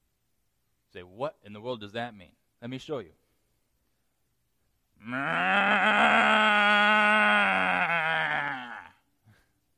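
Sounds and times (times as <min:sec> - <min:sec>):
speech: 0:00.9 - 0:03.2, 0:05.0 - 0:06.8
person imitating a cow with a long sorrowful moo: 0:05.0 - 0:09.0.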